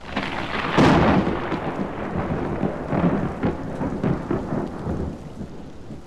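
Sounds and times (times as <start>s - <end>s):
heavy rain: 0.0s - 6.0s
thunder rumble: 0.0s - 6.0s.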